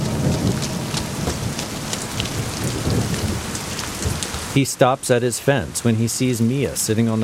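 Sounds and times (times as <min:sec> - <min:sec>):
low rumble: 0:00.0 - 0:04.5
steady pouring rain with droplets tapping on a surface: 0:00.0 - 0:07.2
speech: 0:04.6 - 0:07.2.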